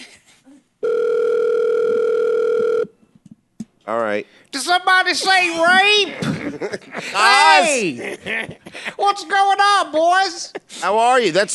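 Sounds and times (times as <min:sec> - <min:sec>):
telephone line tone as a call to a back phone is put through: 0:00.8 - 0:03.0
speech: 0:03.9 - 0:11.5
laughter: 0:05.1 - 0:11.1.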